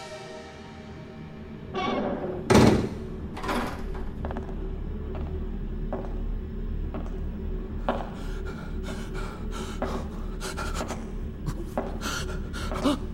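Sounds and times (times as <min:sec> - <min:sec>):
steady low mechanical hum: 0:00.8 - 0:13.1
door pushed closed with a heavy thud: 0:02.5 - 0:04.0.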